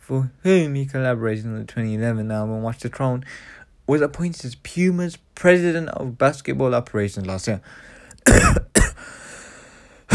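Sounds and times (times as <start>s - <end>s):
speech: 0.1s - 8.7s
harsh loud coughs: 8.2s - 9.2s.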